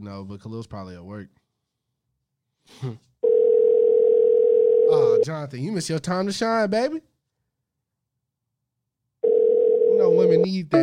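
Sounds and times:
speech: 0:00.0 - 0:01.4, 0:02.7 - 0:03.1, 0:04.9 - 0:07.1, 0:10.0 - 0:10.8
telephone dial tone: 0:03.2 - 0:04.9, 0:09.2 - 0:10.4.

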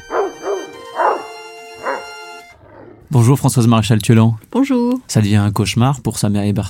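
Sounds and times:
neighbour's dog barking: 0:00.1 - 0:03.0
speech: 0:03.1 - 0:06.6.

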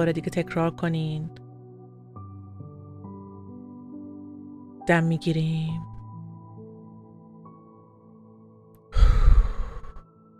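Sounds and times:
speech: 0:00.0 - 0:01.4, 0:04.9 - 0:05.9
deep exhale during a guided breathing exercise: 0:08.9 - 0:10.0.

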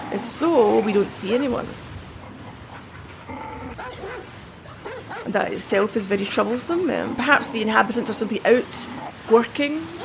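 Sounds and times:
steady noisy outdoor background: 0:00.0 - 0:10.0
speech: 0:00.2 - 0:01.9, 0:05.2 - 0:10.0
Alsatian dog barking: 0:02.3 - 0:05.3
Alsatian dog yelping whine: 0:03.6 - 0:05.3.

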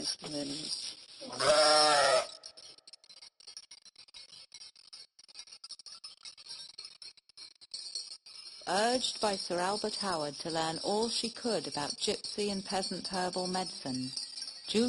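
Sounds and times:
speech: 0:00.0 - 0:02.3, 0:08.7 - 0:14.8
sheep bleating: 0:01.3 - 0:02.4.

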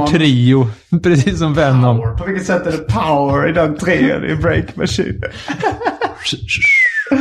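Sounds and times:
rhythmic song: 0:00.0 - 0:07.2
speech: 0:00.0 - 0:07.2
laughter: 0:01.0 - 0:07.2
bright whistled melody: 0:06.6 - 0:07.2.

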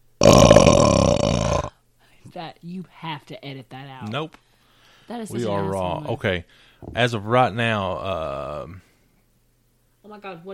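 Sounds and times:
long deep rumbling burp: 0:00.2 - 0:01.8, 0:07.8 - 0:08.8
speech: 0:02.3 - 0:04.5, 0:05.1 - 0:08.9, 0:10.1 - 0:10.5.

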